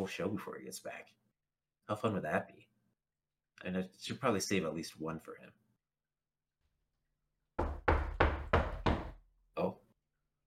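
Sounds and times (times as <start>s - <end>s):
speech: 0.0s - 1.2s, 1.9s - 2.7s, 3.6s - 5.6s, 9.6s - 9.8s
firm knocking on a door: 7.6s - 9.2s.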